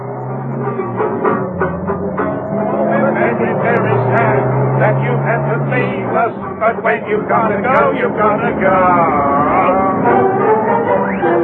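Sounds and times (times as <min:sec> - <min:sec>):
car engine humming: 0:00.0 - 0:11.4
person singing: 0:02.5 - 0:11.4.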